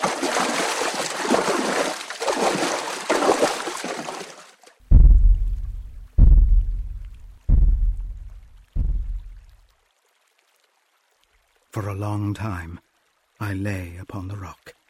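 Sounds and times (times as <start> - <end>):
water splashing as something crosses a river: 0.0 - 9.6
deep booming thuds: 4.9 - 9.5
speech: 11.8 - 14.8.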